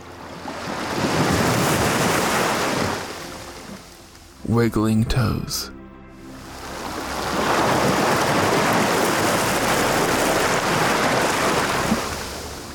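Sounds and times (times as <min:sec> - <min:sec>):
ocean waves washing over sand: 0:00.0 - 0:03.9, 0:06.5 - 0:12.7
speech: 0:04.5 - 0:05.8.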